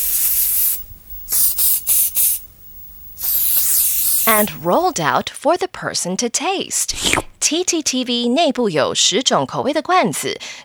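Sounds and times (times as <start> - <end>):
high-pressure nozzle spraying flavour liquid onto film: 0.0 - 5.1
speech: 4.3 - 10.6.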